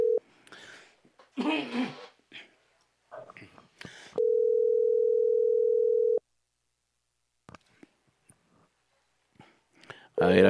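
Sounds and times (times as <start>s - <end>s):
telephone dial tone while placing a call: 0.0s - 0.2s, 4.2s - 6.2s.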